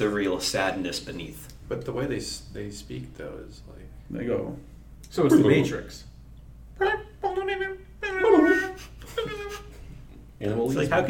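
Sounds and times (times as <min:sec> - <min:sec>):
speech: 0:00.0 - 0:06.1, 0:06.8 - 0:07.8, 0:10.4 - 0:11.0
person imitating a cute puppy talking in high whiny gibberish: 0:07.0 - 0:09.8.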